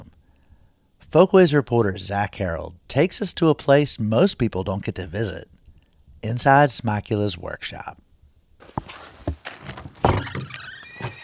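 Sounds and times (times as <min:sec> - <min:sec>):
speech: 0:01.1 - 0:05.6, 0:06.2 - 0:08.0
faint creaking of luthier's workshop front door: 0:09.4 - 0:11.2.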